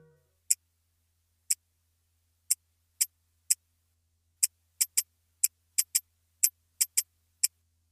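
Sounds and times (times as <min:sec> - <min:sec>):
wristwatch ticking held up to microphone: 0:01.5 - 0:01.7, 0:02.5 - 0:03.6, 0:04.4 - 0:07.6.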